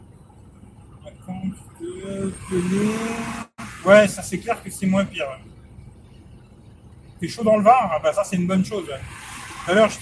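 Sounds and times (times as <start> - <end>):
car engine rumble while driving: 0.0 - 10.0
road noise: 0.0 - 10.0
speech: 1.4 - 5.5, 7.2 - 10.0.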